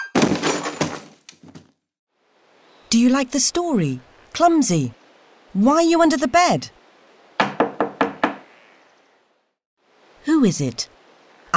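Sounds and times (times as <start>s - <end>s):
speech: 2.9s - 6.8s, 10.4s - 11.0s
knocks on a wooden door made with pine cones: 7.4s - 8.5s.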